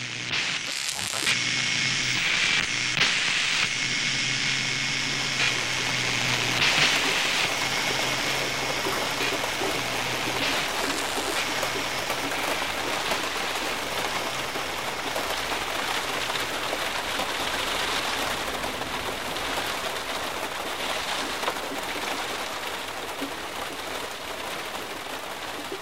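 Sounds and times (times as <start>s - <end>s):
heavy torrential rain spattering on surfaces: 0.0s - 25.8s.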